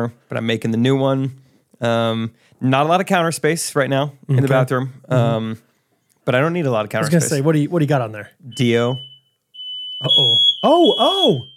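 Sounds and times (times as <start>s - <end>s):
speech: 0.0s - 5.7s, 6.3s - 9.1s, 10.0s - 11.5s
smoke detectors sounding a piercing high-pitched tone: 8.5s - 11.5s.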